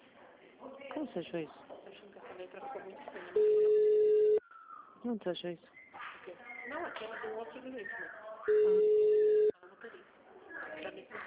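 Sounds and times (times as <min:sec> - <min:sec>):
speech: 0:01.0 - 0:04.0, 0:05.0 - 0:09.1, 0:10.9 - 0:11.2
telephone tone as a call drops: 0:03.4 - 0:04.4, 0:08.5 - 0:09.5.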